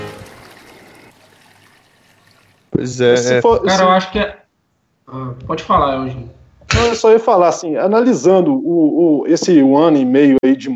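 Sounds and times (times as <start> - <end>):
toilet flushing: 0.0 - 2.7
speech: 2.8 - 4.4, 5.1 - 10.7.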